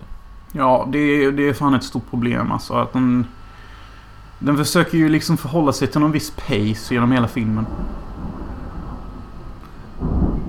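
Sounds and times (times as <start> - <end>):
speech: 0.5 - 3.4, 4.4 - 8.1
deep thunder rumbling: 6.8 - 10.4.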